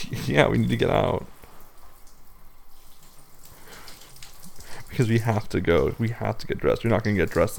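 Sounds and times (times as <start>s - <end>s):
water running from a tap while something is rinsed out: 0.0s - 7.5s
speech: 0.2s - 1.4s, 5.0s - 7.5s.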